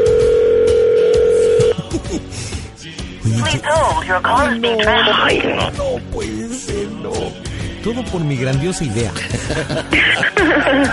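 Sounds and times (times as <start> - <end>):
telephone ringing tone while waiting for answer: 0.0 - 1.7
people laughing: 1.7 - 2.4, 9.2 - 10.9
speech: 3.5 - 10.9.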